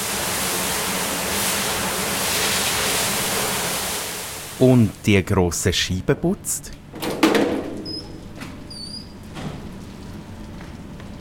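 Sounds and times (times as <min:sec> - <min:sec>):
zookeeper's water hose spraying down an indoor zoo enclosure: 0:00.0 - 0:05.0
speech: 0:04.6 - 0:06.8.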